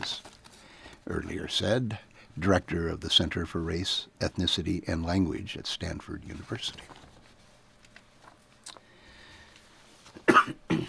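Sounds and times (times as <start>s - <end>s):
speech: 1.1s - 7.0s
person coughing harshly: 10.2s - 10.8s.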